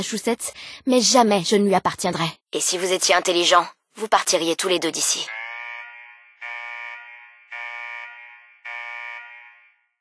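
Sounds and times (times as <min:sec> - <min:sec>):
speech: 0:00.0 - 0:05.4
loud harsh electronic alarm blaring: 0:05.3 - 0:09.9.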